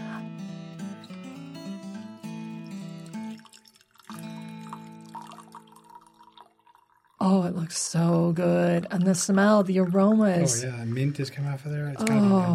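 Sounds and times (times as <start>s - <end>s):
tea pouring into a cup: 2.8s - 12.5s
speech: 7.2s - 12.5s.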